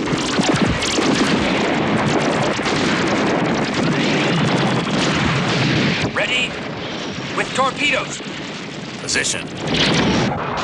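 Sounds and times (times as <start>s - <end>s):
laser cannon firing: 0.0s - 10.6s
speech: 7.9s - 8.3s, 9.1s - 10.6s.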